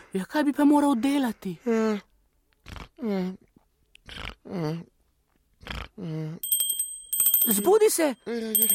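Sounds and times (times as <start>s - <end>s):
speech: 0.1s - 3.5s, 4.1s - 4.9s, 5.6s - 6.5s, 7.4s - 8.7s
small bell ringing as an alarm: 6.4s - 8.7s.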